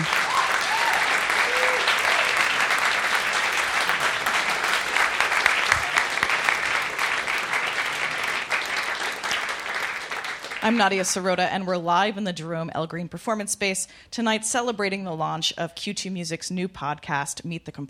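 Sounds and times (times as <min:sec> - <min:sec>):
sustained applause from a sizable audience: 0:00.0 - 0:10.8
speech: 0:10.7 - 0:17.8.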